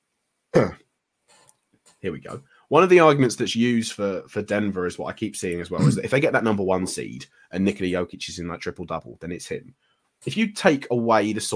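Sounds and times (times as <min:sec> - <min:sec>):
short throaty cough-like throat clearing: 0:00.6 - 0:00.8, 0:05.8 - 0:06.1
speech: 0:00.6 - 0:00.8, 0:02.0 - 0:11.5.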